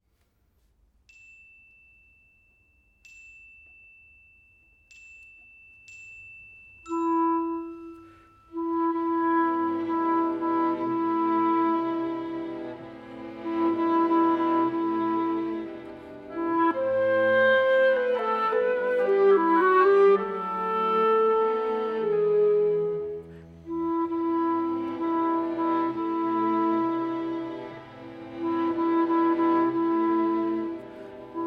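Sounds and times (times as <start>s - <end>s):
clarinet: 6.9s - 31.4s.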